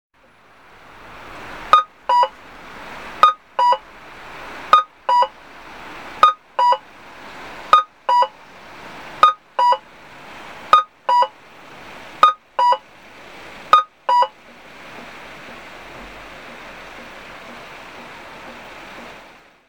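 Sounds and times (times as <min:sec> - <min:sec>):
cuckoo tone audible traffic signal at a crossing in Toyohashi Aichi: 0:01.7 - 0:02.4, 0:03.2 - 0:03.9, 0:04.7 - 0:05.4, 0:06.2 - 0:06.8, 0:07.7 - 0:08.4, 0:09.2 - 0:09.9, 0:10.7 - 0:11.4, 0:12.2 - 0:12.9, 0:13.7 - 0:14.4.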